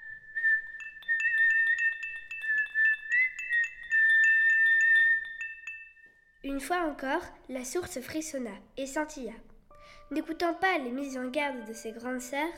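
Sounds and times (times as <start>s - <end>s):
person whistling a simple wavering tune while walking away: 0.0s - 6.4s
light tinkling accents: 0.6s - 6.7s
speech: 6.4s - 9.5s, 10.1s - 12.5s.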